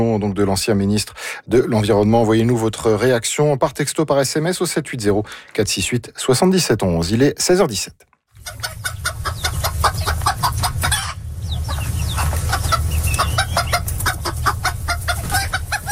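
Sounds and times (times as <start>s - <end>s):
speech: 0.0s - 8.9s
flock of hens clucking: 8.3s - 15.9s
low continuous rumble: 8.5s - 15.8s.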